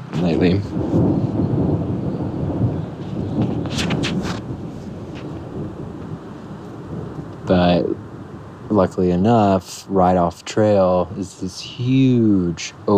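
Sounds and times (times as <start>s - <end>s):
rolling thunder from an approaching storm: 0.0s - 10.3s
speech: 0.2s - 1.4s, 8.8s - 12.9s.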